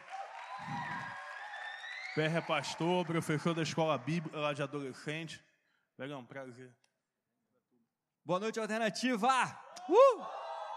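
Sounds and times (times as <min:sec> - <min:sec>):
crowd applauding: 0:00.0 - 0:05.1
speech: 0:02.2 - 0:06.8, 0:08.2 - 0:10.4.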